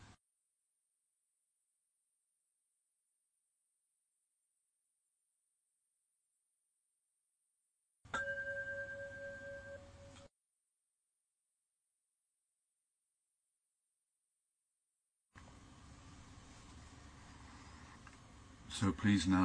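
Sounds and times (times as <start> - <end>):
meditation bell struck to end zazen: 8.1 - 10.3
speech: 18.7 - 19.4.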